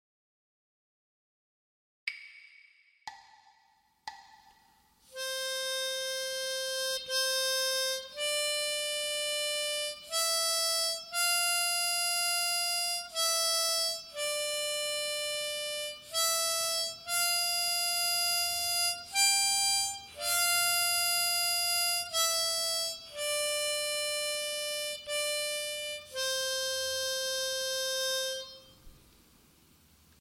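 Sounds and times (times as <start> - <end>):
bagpipe sight-reading exercises: 5.1 - 28.8.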